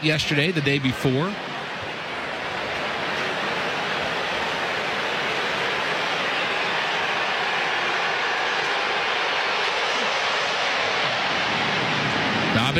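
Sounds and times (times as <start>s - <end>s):
speech: 0.0s - 1.5s
airplane jet engine roar passing low over a ballpark: 1.8s - 12.7s.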